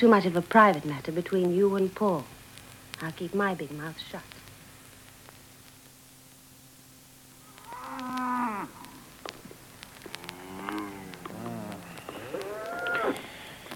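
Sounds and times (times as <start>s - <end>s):
speech: 0.0s - 2.4s, 3.0s - 4.4s
herd of cattle mooing: 7.5s - 9.0s, 10.1s - 13.2s.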